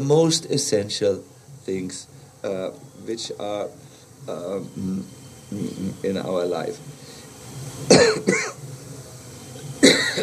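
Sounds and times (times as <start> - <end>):
speech: 0.0 - 7.1, 7.7 - 8.6
person coughing: 7.9 - 8.6.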